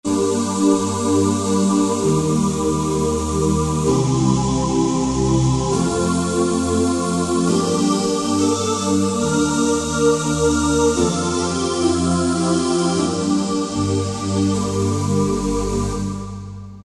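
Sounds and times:
synthesizer choir ooh: 0.0 - 16.8.

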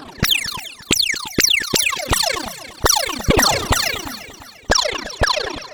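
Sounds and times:
synthesizer laser cannon effect: 0.3 - 5.3.

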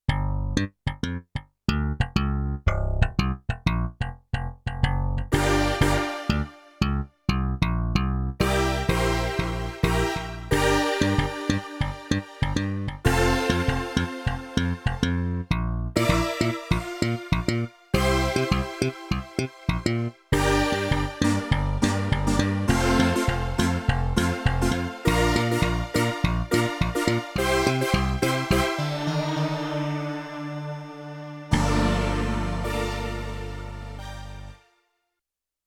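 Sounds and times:
slap bass and synth split on Yamaha TX16W sampler: 0.1 - 30.2, 31.5 - 34.6.

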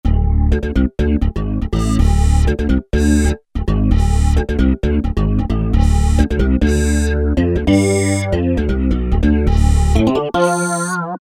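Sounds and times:
pop synth bass from a Roland SR-JV80-01: 0.0 - 10.6.

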